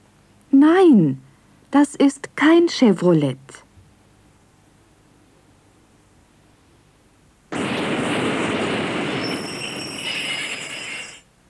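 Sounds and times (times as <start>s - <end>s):
speech: 0.6s - 3.6s
underground subway train rushing past: 7.5s - 11.3s
subway train thin high wheel squeal: 8.4s - 11.3s.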